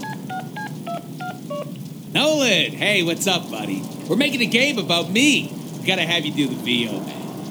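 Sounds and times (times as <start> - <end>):
telephone keypad dialing tones in a video game: 0.0 - 1.8
faint low hum: 0.0 - 7.4
speech: 1.6 - 7.4.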